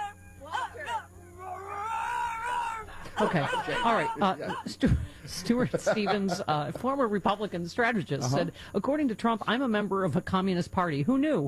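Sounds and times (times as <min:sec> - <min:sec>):
animal growl sound effect: 0:00.0 - 0:04.7
laughter: 0:02.8 - 0:07.3
speech: 0:03.2 - 0:11.4.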